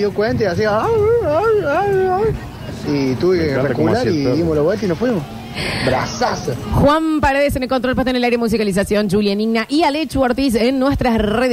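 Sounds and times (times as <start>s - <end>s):
faint noise: 0.0s - 11.5s
speech: 0.0s - 11.5s
person imitating a frightened dog whimpering: 0.8s - 2.4s.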